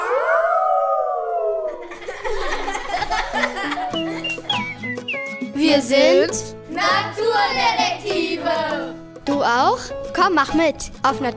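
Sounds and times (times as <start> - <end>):
wolf howling: 0.0 - 1.9
laughter: 1.6 - 5.0
busy music with plucked notes: 2.4 - 11.3
speech: 5.7 - 11.3.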